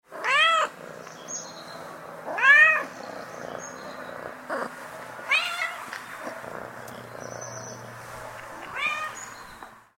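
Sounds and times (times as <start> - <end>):
cat purring: 0.1 - 9.2
cat meowing: 0.2 - 0.7, 2.3 - 2.9, 5.3 - 5.9, 8.6 - 9.3.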